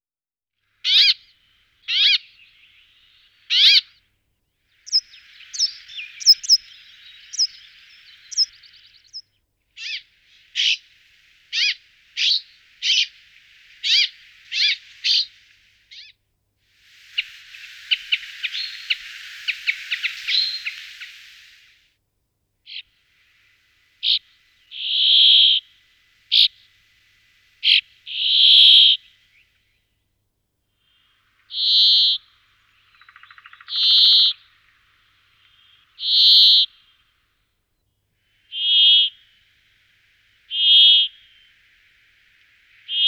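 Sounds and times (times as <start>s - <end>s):
Fringilla montifringilla calling: 0.8s - 1.3s, 1.9s - 4.0s, 4.8s - 9.2s, 9.8s - 16.1s, 17.1s - 21.6s, 24.0s - 25.6s, 26.3s - 26.6s, 27.6s - 29.0s, 31.5s - 32.2s, 32.9s - 34.6s, 35.5s - 36.7s, 38.5s - 39.2s, 40.5s - 41.3s, 42.9s - 43.0s.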